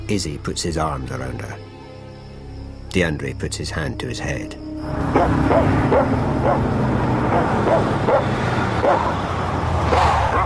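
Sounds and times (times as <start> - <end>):
speech: 0.1 - 1.8, 2.9 - 9.3
low truck engine rumble: 3.4 - 10.4
dog barking in the back of a truck: 5.1 - 9.2, 9.9 - 10.4.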